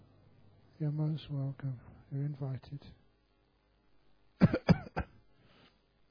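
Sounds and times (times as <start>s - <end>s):
speech: 0.8s - 3.0s
person coughing deliberately: 4.4s - 5.2s.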